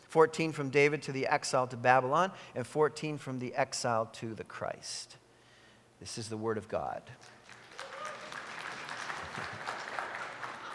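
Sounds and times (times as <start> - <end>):
speech: 0.1 - 5.2, 6.0 - 7.4
audience applause: 7.2 - 10.7.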